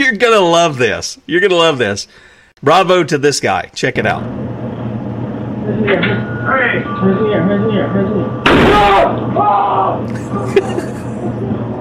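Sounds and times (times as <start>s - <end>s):
speech: 0.1s - 4.4s, 5.7s - 11.6s
shotgun fired at intruders: 8.4s - 9.1s
laughter: 10.0s - 11.7s.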